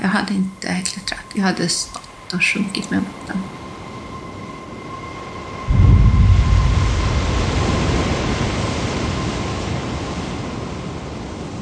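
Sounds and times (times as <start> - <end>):
wind at sea: 0.0 - 11.6
speech: 0.1 - 3.6
stormy sea roaring: 2.9 - 11.6
heavy wave crashing in a stormy sea: 5.7 - 10.2.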